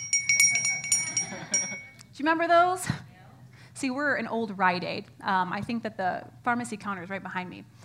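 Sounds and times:
small handbell shaken rapidly: 0.0 - 2.0
low murmur of room noise: 0.0 - 7.8
speech: 2.2 - 3.0, 3.8 - 7.8.

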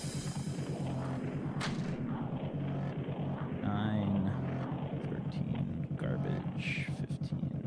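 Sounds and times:
dense rhythmic low pulsing background: 0.0 - 7.6
ricochet bullet gunshot in a video game: 1.5 - 2.2.

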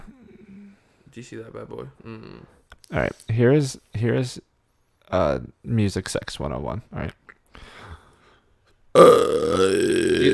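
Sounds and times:
speech: 1.1 - 4.5, 5.1 - 7.2, 9.0 - 10.3
long loud deep burp: 9.0 - 10.3.

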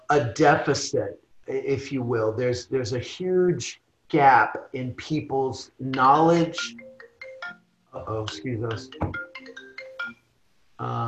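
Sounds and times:
speech: 0.1 - 6.8, 7.9 - 9.2, 10.8 - 11.0
melodic electronic phone ringtone from an incoming call: 6.5 - 10.3.

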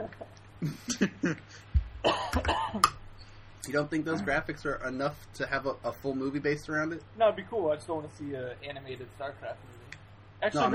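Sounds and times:
low steady hum: 0.0 - 10.7
speech: 0.1 - 2.9, 3.7 - 9.8, 10.4 - 10.7
person coughing: 2.0 - 3.0.

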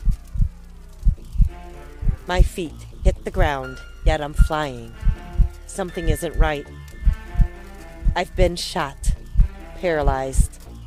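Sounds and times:
heartbeat throbbing in a person's ears: 0.0 - 10.5
faint steady hum: 0.0 - 10.8
speech: 2.3 - 5.1, 5.7 - 6.9, 8.2 - 9.1, 9.8 - 10.6.

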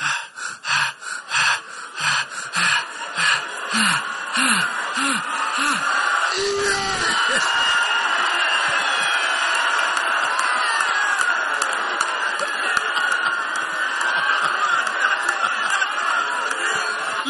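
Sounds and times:
moan-like sighs: 0.0 - 7.4
excited heavy breathing and gasping: 0.0 - 7.5, 15.2 - 17.2
laughter: 0.0 - 17.2.

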